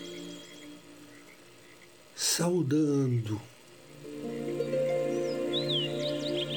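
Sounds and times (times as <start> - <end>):
soft musical drone: 0.0 - 2.5, 3.6 - 6.5
birds chirping at dawn: 0.0 - 6.5
speech: 2.3 - 3.6.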